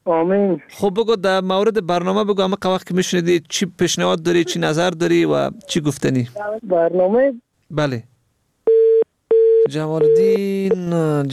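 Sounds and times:
speech: 0.1 - 8.1, 9.6 - 11.3
telephone busy tone after a dropped call: 8.7 - 10.8.

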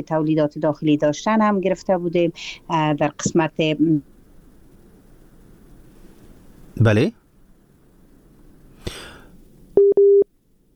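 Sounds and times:
speech: 0.0 - 4.1, 6.8 - 7.2
short broadband thump: 8.8 - 9.2
phone busy tone beeps after a disconnected call: 9.8 - 10.3.

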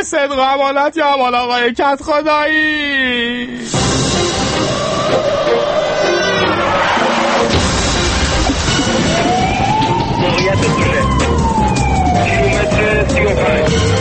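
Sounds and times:
speech: 0.0 - 4.1, 10.2 - 11.1, 12.8 - 13.9
street noise: 3.5 - 13.9
ambulance siren wailing: 4.4 - 13.9.

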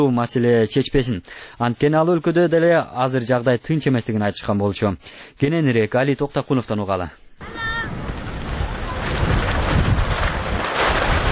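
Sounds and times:
speech: 0.0 - 7.6
strong wind buffeting multicoloured tents: 7.4 - 11.2.

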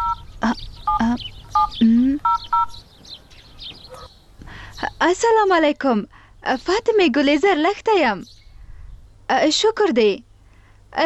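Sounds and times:
telephone keypad tones as a number is dialed: 0.0 - 0.3, 0.9 - 2.8
speech: 0.5 - 2.0, 5.0 - 8.4, 9.3 - 10.3.

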